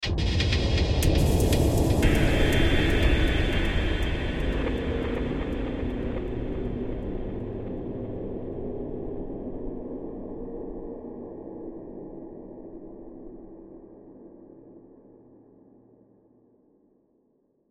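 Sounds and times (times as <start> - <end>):
eerie airy swelling horror hit with delay: 0.0 - 10.0.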